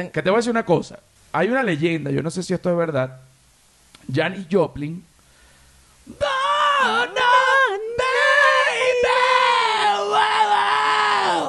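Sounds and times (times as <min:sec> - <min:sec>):
speech: 0:00.0 - 0:03.3, 0:04.0 - 0:05.1, 0:06.1 - 0:07.2
female rock singer screaming: 0:06.1 - 0:11.4.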